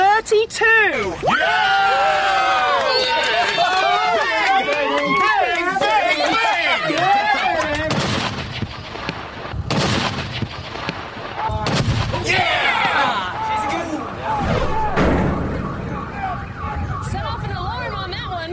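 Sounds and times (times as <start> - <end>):
speech: 0.3 - 1.6
people shouting excitedly: 1.1 - 7.9, 11.4 - 15.0
heavy artillery cannon blasts: 7.8 - 13.0, 13.7 - 18.3
wavering siren-like whine: 12.6 - 18.5.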